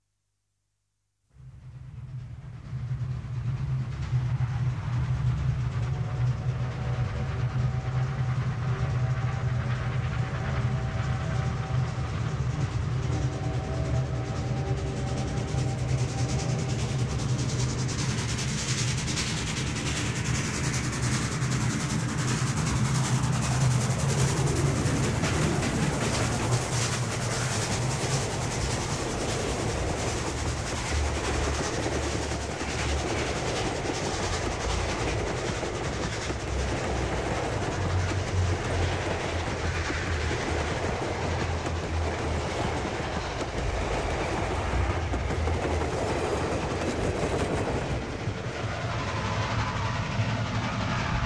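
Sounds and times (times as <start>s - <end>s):
steam train passing: 1.4s - 51.2s.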